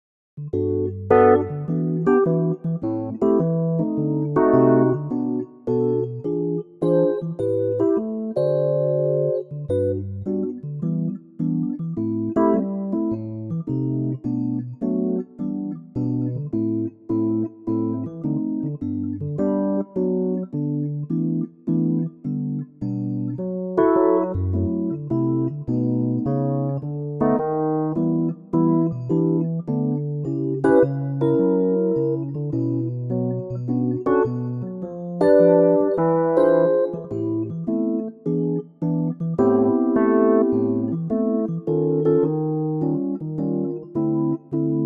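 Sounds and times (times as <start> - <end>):
electric piano playing G: 0.4 - 44.8.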